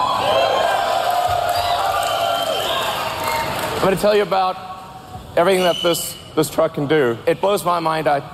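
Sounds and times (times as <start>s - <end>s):
large crowd cheering and whooping at truck unveiling event: 0.0s - 3.8s
speech: 3.8s - 4.7s, 5.4s - 8.3s.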